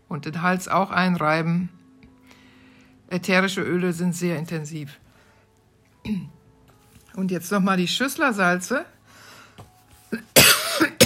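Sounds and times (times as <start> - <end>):
speech: 0.1 - 1.8, 3.1 - 5.0, 6.0 - 6.4, 7.2 - 9.0
person coughing: 10.2 - 11.0.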